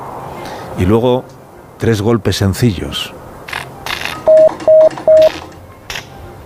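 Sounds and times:
speech: 0.8s - 3.2s
Morse code letter S beeps received by wireless: 4.2s - 5.5s.

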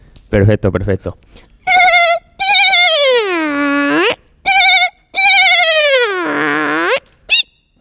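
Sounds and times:
speech: 0.3s - 1.5s
person vocally imitating otter calls with chirps and whining cries: 1.6s - 7.5s.

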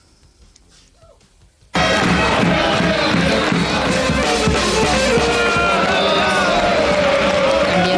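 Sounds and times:
large indoor arena crowd roaring and chanting at basketball cup game: 1.8s - 7.9s.

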